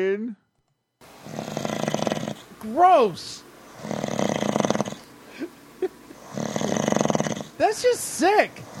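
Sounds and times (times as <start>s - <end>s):
speech: 0.0s - 0.4s, 2.6s - 3.9s, 7.6s - 8.7s
person snoring: 1.2s - 2.4s, 3.8s - 5.1s, 6.1s - 7.6s, 8.6s - 8.7s.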